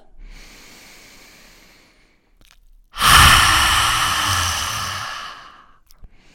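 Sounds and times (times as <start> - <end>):
forceful exhale through the mouth with the tongue stuck out: 3.0 - 5.6.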